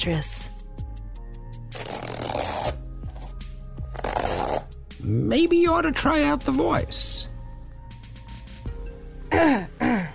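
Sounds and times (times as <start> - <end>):
speech: 0.0 - 0.4, 5.0 - 7.3, 9.4 - 9.7
zipper being pulled up on outfit: 1.7 - 4.8.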